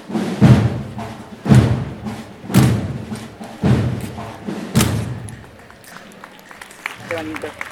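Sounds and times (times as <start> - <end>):
heavy marching footsteps of a military picket with metallic ring: 0.0 - 5.8
crowd murmur in the streets of Cartagena: 0.0 - 7.6.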